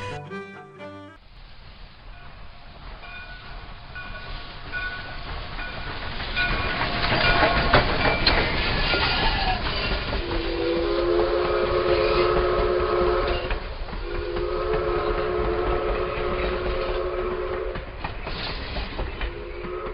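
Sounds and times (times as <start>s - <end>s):
train rumbling past: 1.2s - 19.9s
train whistle blasts: 10.2s - 17.9s, 19.3s - 19.9s.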